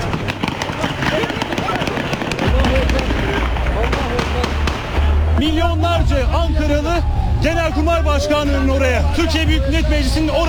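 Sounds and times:
gunshots near a parliament building: 0:00.0 - 0:05.4
deep rumble: 0:02.4 - 0:10.4
speech: 0:05.4 - 0:10.4.

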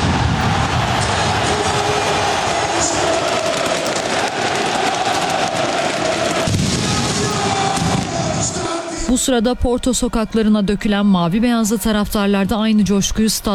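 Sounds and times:
fireworks crackling and booming over a football stadium: 0:00.0 - 0:09.2
stadium crowd roar: 0:00.0 - 0:11.8
speech: 0:09.2 - 0:13.5.

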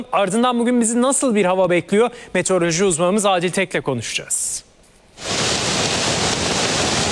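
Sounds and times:
speech: 0:00.0 - 0:04.7
heavy rain during a downpour in Samsun's Havza district, Turkey: 0:05.2 - 0:07.1
rushing floodwater in Samsun's Havza district, Turkey: 0:05.2 - 0:07.1.

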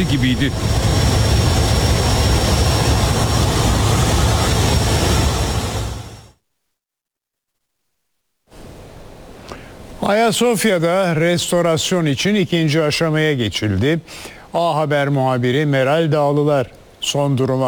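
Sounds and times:
speech: 0:00.0 - 0:01.0, 0:10.1 - 0:17.6
airplane in flight with its door open, wind and engine noise: 0:00.0 - 0:06.3.

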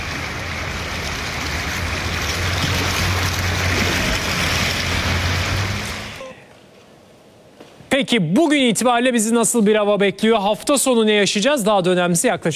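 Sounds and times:
floodwater rushing through submerged streets after heavy rain: 0:00.0 - 0:06.9
speech: 0:08.0 - 0:12.5.

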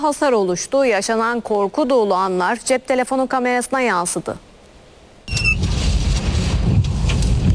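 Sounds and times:
speech: 0:00.0 - 0:04.5
strong wind ahead of a tornado in Ahlat, Bitlis: 0:05.3 - 0:07.5.

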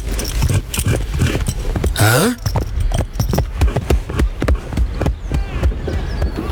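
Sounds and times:
horse hooves clip-clopping: 0:00.0 - 0:06.5
speech: 0:02.0 - 0:02.5.

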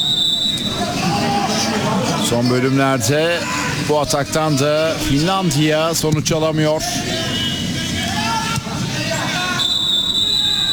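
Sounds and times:
referee's final whistle: 0:00.0 - 0:00.9, 0:07.2 - 0:08.0, 0:09.5 - 0:10.7
stadium crowd roar: 0:00.0 - 0:10.7
speech: 0:02.3 - 0:07.2.

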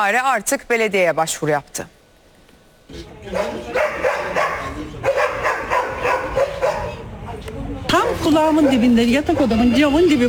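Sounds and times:
speech: 0:00.0 - 0:02.0, 0:02.9 - 0:04.4, 0:07.9 - 0:10.2
many dogs barking at a dog farm in a residential neighbourhood: 0:03.2 - 0:07.2, 0:08.0 - 0:09.7.

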